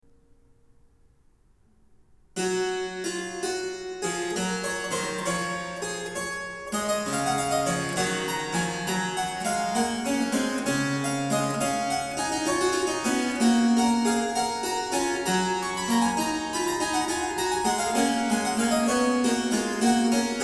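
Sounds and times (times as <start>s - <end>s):
canon at the octave on harpsichord: 2.4s - 20.4s.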